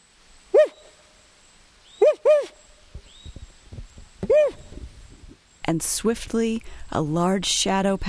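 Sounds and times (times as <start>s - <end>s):
man imitating a territorial owl call: 0.5s - 0.9s, 2.0s - 2.6s, 4.2s - 4.9s
speech: 4.3s - 4.6s, 5.7s - 8.0s.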